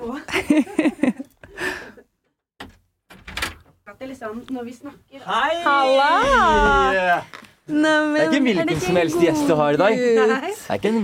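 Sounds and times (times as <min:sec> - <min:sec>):
speech: 0:00.0 - 0:00.9, 0:04.2 - 0:11.0
laughter: 0:00.1 - 0:01.9
door being opened as people arrive: 0:02.6 - 0:03.8.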